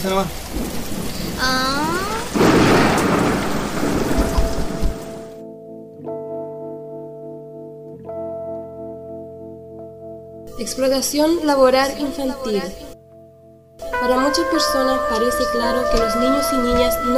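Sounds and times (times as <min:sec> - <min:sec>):
speech: 0:00.0 - 0:02.4, 0:10.6 - 0:12.8, 0:14.0 - 0:17.1
steady heavy rain hissing: 0:00.0 - 0:05.4
deep rumble of thunder: 0:00.2 - 0:05.4
soft sustained musical tones: 0:05.0 - 0:17.1.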